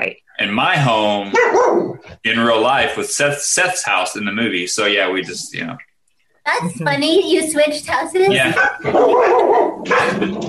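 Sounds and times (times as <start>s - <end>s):
speech: 0.0s - 10.4s
household dogs barking excitedly at home: 1.3s - 2.0s, 8.4s - 10.4s
laughter: 6.5s - 7.2s, 8.3s - 9.0s, 9.9s - 10.4s.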